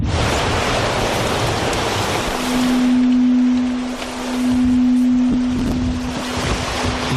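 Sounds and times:
steady low tonal drone underwater: 0.0 - 6.8
dense rushing underwater water noise: 0.0 - 7.1.

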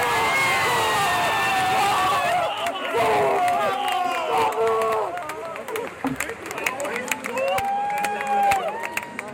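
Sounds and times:
large crowd cheering in a velodrome: 0.0 - 9.3
people clapping: 2.3 - 9.3.

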